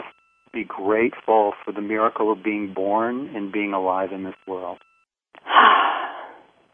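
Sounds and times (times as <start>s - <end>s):
speech: 0.6s - 4.9s
deep breath: 5.4s - 6.5s.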